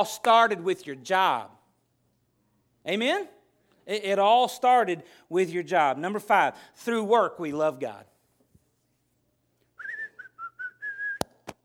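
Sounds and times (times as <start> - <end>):
speech: 0.0 - 1.6, 2.8 - 8.1
person whistling a short melodic tune: 9.8 - 11.4.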